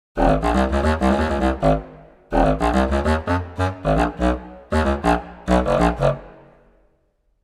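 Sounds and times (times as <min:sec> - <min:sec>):
sampled contrabass clarinet: 0:00.2 - 0:06.7.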